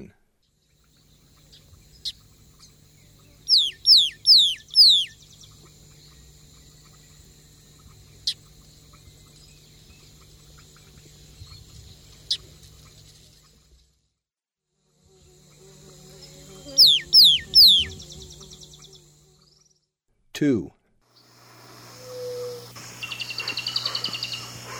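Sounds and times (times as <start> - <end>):
Pale-eyed Blackbird calling: 1.0 - 12.9, 16.7 - 19.0, 21.2 - 24.7.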